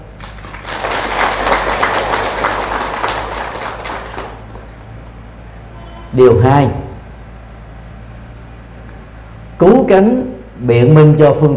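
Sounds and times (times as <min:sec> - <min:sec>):
room full of people applauding: 0:00.1 - 0:05.2
speech: 0:06.2 - 0:06.8, 0:09.6 - 0:11.5.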